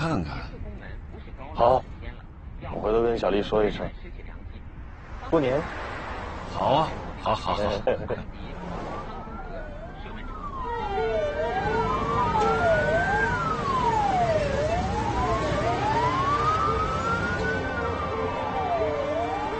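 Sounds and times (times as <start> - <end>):
low rumble of traffic: 0.0 - 19.5
speech: 0.1 - 0.7, 1.6 - 1.9, 2.7 - 4.2, 5.3 - 5.9, 6.5 - 8.8
ambulance siren wailing: 8.5 - 19.5.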